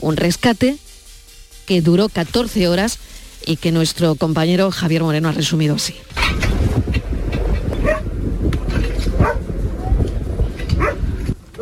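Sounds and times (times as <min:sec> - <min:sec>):
speech: 0:00.0 - 0:00.9, 0:01.7 - 0:06.9
dense rumbling outdoor background: 0:00.0 - 0:11.6
search and rescue dog barking at building ruins: 0:07.8 - 0:08.0, 0:09.2 - 0:09.5, 0:10.8 - 0:11.0.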